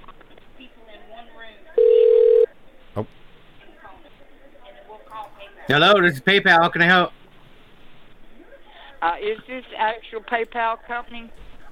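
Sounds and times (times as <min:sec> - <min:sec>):
electronic ring tone over a phone line: 0:01.8 - 0:02.5
speech: 0:03.0 - 0:03.2, 0:05.6 - 0:07.2, 0:09.2 - 0:11.5.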